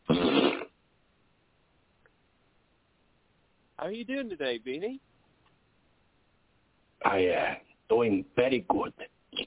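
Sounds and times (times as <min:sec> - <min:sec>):
mouth raspberry imitating a fart: 0:00.0 - 0:00.8
speech: 0:03.8 - 0:05.1, 0:07.0 - 0:09.4.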